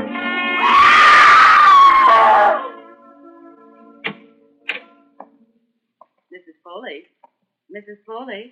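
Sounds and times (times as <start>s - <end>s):
woman screaming: 0.6s - 2.7s
sharp clicks and knocks: 4.0s - 5.4s
speech: 8.2s - 8.4s.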